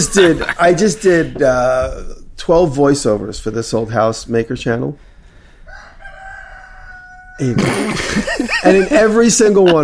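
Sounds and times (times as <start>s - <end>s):
laughter: 0.0s - 1.1s, 7.4s - 9.8s
speech: 0.0s - 5.1s, 7.4s - 9.8s
rooster crowing: 5.7s - 7.6s.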